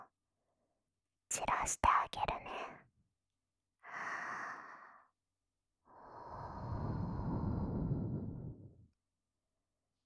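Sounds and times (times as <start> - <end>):
speech: 1.3 - 2.4
soft airy breaths blown into the ear: 6.1 - 8.8.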